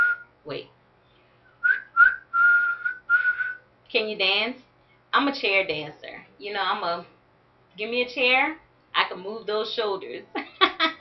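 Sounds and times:
speech: 0.5s - 0.8s, 3.9s - 7.2s, 7.8s - 10.4s
person whistling: 1.5s - 3.6s.

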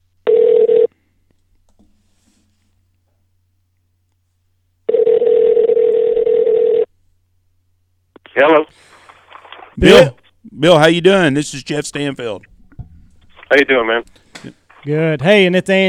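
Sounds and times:
telephone ringing over the line: 0.2s - 0.9s, 4.9s - 6.9s
speech: 9.8s - 12.5s, 13.5s - 15.8s.

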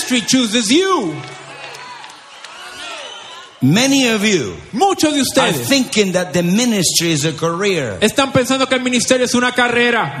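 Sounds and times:
audience applauding at a church service: 0.0s - 3.5s
audience cheering at a church service: 0.0s - 6.1s
speech: 0.1s - 1.4s, 3.6s - 10.1s.

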